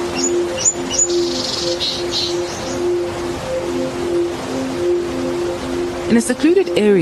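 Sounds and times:
bright high bird chirps: 0.0s - 3.0s
birds calling with low repeated cooing notes: 0.0s - 6.1s
steady rush of flowing river water: 0.0s - 7.0s
speech: 6.1s - 7.0s.

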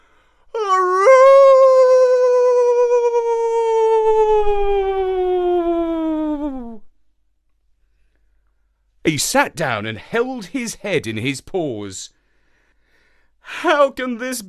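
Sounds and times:
person imitating a mournful dog howl: 0.6s - 6.8s
speech: 9.1s - 12.2s, 13.6s - 14.4s.

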